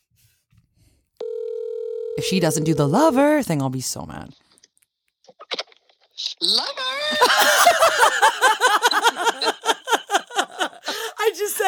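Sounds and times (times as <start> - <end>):
electronic phone ringing tone: 1.2 - 3.2
speech: 2.2 - 4.5
laughter: 6.6 - 11.6.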